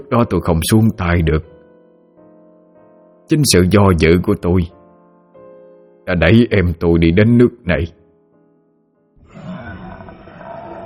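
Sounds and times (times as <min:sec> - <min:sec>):
speech: 0:00.1 - 0:01.5, 0:03.3 - 0:04.8, 0:06.1 - 0:08.0
eerie roar from inside a cave: 0:09.2 - 0:10.8.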